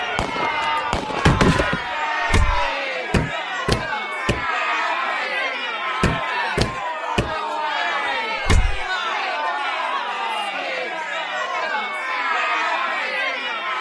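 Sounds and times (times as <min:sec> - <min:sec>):
agitated crowd clamoring in a brawl: 0:00.0 - 0:13.7
sharp loud gunshot-like bangs: 0:00.1 - 0:02.7.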